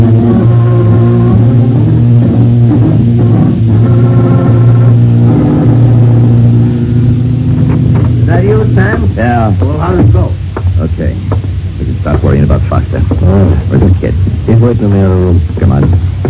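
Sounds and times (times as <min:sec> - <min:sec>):
car engine running as the car is taken from a garage: 0:00.0 - 0:16.2
speech: 0:14.6 - 0:15.9.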